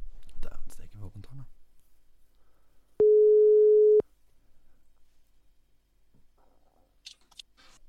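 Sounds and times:
telephone ringback tone over a phone line into a mixer: 3.0 - 4.0.

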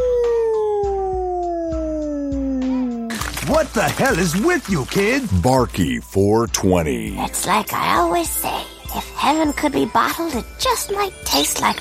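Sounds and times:
wolf howling: 0.0 - 3.1
speech: 3.5 - 8.6, 9.2 - 11.7.

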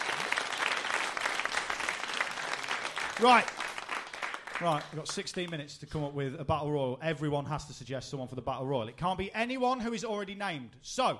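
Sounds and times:
steady round of applause: 0.0 - 5.6
speech: 3.2 - 3.6, 4.6 - 11.1.

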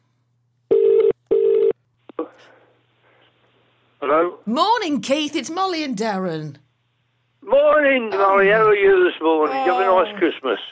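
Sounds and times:
telephone ringback tone double ring on a call from a burner phone: 0.7 - 1.7
speech: 4.0 - 6.6, 7.5 - 10.6.

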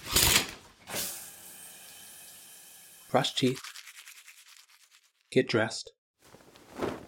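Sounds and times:
shower spraying: 1.0 - 5.3
speech: 3.1 - 3.8, 5.3 - 6.0.

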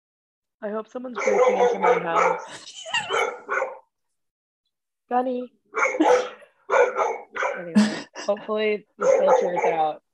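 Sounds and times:
speech: 0.6 - 3.6, 5.1 - 6.3, 7.6 - 10.0
dog barking: 1.2 - 3.9, 5.7 - 7.8, 9.0 - 10.0.

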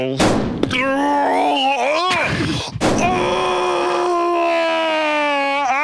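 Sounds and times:
suppressed gunshot thump: 0.2 - 0.7
long loud human groan: 0.7 - 5.8.

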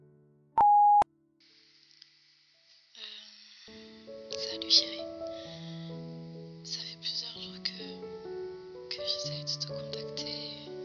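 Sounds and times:
voicemail recording electronic beep tone: 0.6 - 1.0
faint hiss: 1.4 - 10.8
speech: 4.6 - 5.1.

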